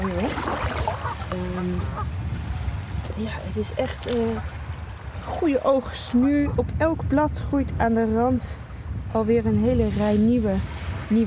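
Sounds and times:
steady low outdoor rumble: 0:00.0 - 0:11.2
goose honking in a bay: 0:00.9 - 0:02.1
speech: 0:03.1 - 0:04.6, 0:05.4 - 0:11.2.

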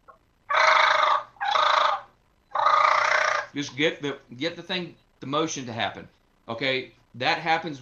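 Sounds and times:
turkey fighting purr blown on a diaphragm mouth call: 0:00.0 - 0:03.8
speech: 0:03.6 - 0:07.8.

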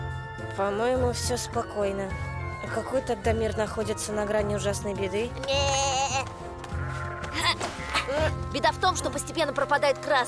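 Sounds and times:
steady low rhythmic background: 0:00.0 - 0:10.2
speech: 0:00.5 - 0:06.3, 0:08.1 - 0:10.2
sheep bleating: 0:05.4 - 0:08.1.

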